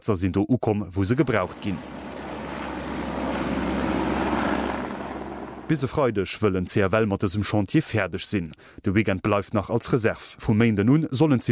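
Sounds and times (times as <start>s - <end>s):
speech: 0.0s - 2.0s, 5.7s - 11.5s
helicopter rotor and engine roaring while flying nets: 1.2s - 5.9s.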